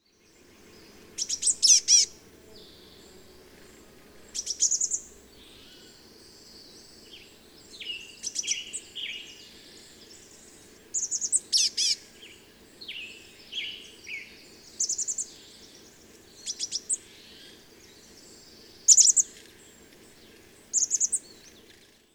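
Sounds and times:
chestnut-backed chickadee calling: 0.6 - 3.0, 4.3 - 17.6, 18.8 - 19.4.

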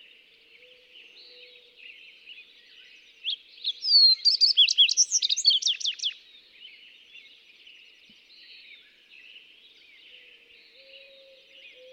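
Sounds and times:
Fox sparrow delivering a rich warbled song: 3.2 - 6.2.

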